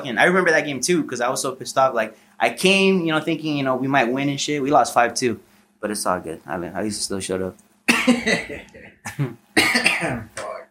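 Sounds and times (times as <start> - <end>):
speech: 0.0 - 10.5
person coughing harshly: 7.9 - 10.7.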